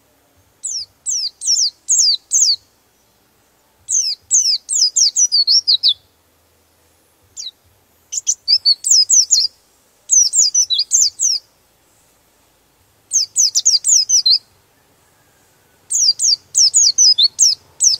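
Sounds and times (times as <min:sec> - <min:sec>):
white-eye chirping: 0:00.6 - 0:03.2, 0:03.9 - 0:06.1, 0:07.3 - 0:11.5, 0:13.1 - 0:17.9.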